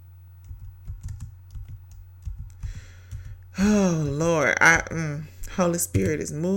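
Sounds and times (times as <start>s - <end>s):
steady low hum: 0.0s - 6.5s
typing on a computer keyboard: 0.4s - 3.4s
speech: 3.6s - 6.5s.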